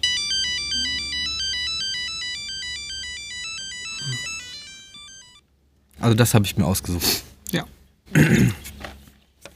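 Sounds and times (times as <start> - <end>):
electronic phone ringtone melody: 0.0 - 5.4
speech: 6.0 - 8.6.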